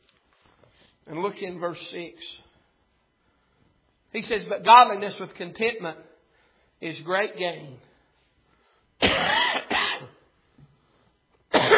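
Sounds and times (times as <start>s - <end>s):
speech: 1.1s - 2.5s, 4.1s - 6.1s, 6.8s - 7.9s
man coughing close to the microphone: 9.0s - 10.3s, 11.5s - 11.7s.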